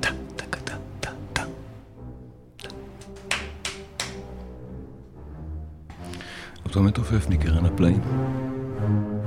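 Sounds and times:
voice imitating a symphonic drummer's steady beat with ta syllables: 0.0s - 1.6s
speech: 6.7s - 9.1s.

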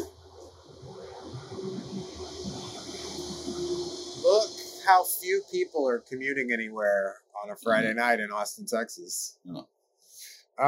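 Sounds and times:
faint metallic squealing tones: 0.0s - 8.4s
train rolling past: 0.0s - 8.4s
speech: 4.9s - 9.7s.

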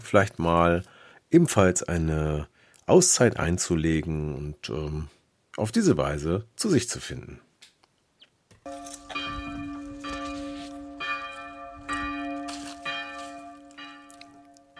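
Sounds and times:
speech: 0.1s - 7.4s
monastery church bells ringing for prayer: 8.7s - 14.7s.

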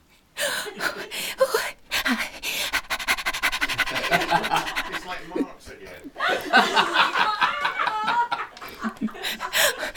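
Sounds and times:
happy dog panting on a walk: 1.9s - 5.9s
laughter: 3.6s - 9.9s.

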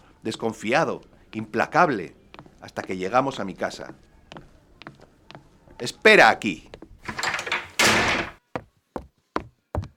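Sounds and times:
speech: 0.2s - 4.5s, 5.8s - 7.2s
door pushed shut with a thud: 7.0s - 8.4s.

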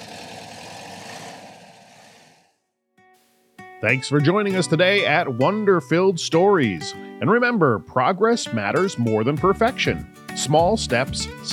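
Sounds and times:
sputtering car engine driving away: 0.0s - 2.4s
speech: 3.8s - 11.5s.

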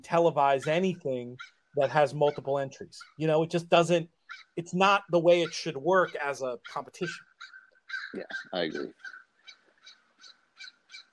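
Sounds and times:
speech: 0.0s - 7.3s, 8.1s - 9.1s
crow cawing: 4.2s - 4.6s, 5.5s - 11.1s.

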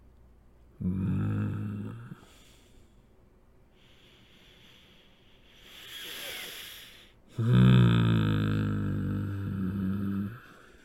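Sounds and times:
voice imitating loud snoring: 0.8s - 2.3s, 5.7s - 10.8s.

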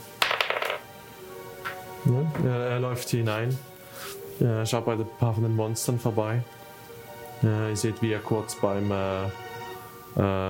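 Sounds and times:
dice clattering across a hard table: 0.2s - 0.9s
speech: 2.0s - 3.7s, 4.4s - 6.6s, 7.4s - 9.4s, 10.1s - 10.4s.

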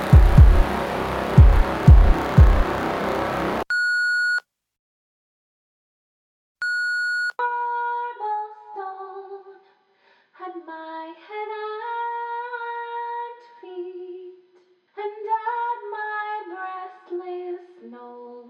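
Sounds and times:
low rumbling thumps: 0.0s - 3.6s
stepped melodic tones: 0.0s - 3.6s
voicemail answering machine beep: 3.7s - 4.4s, 6.6s - 7.3s.

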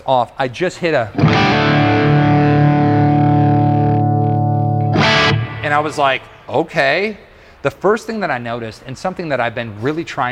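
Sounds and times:
speech: 0.0s - 1.9s, 5.6s - 10.3s
distorted electric guitar chord through a 1959 Super Lead 68 Plexi tube amp: 1.2s - 6.3s.

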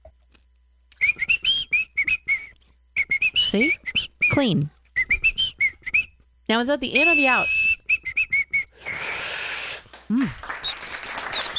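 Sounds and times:
person whistling a short bouncy melody: 1.0s - 6.2s, 7.0s - 9.3s, 10.5s - 11.5s
speech: 3.6s - 4.8s, 6.5s - 7.6s.

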